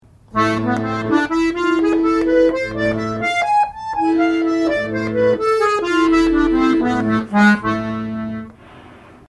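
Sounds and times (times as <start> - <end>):
A harmonic minor scale played: 0.3 - 8.5.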